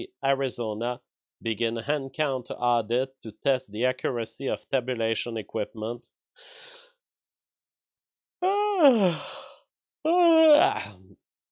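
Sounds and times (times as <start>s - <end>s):
speech: 0.0s - 6.8s, 8.4s - 9.4s, 10.0s - 11.2s
brief breathy sound: 8.4s - 11.1s
person yawning: 8.4s - 11.2s.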